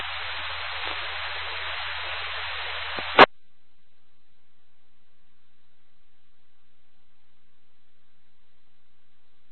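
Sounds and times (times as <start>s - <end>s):
hissing radio static on an amateur ham radio net: 0.0s - 3.3s
low electrical hum: 0.0s - 9.5s.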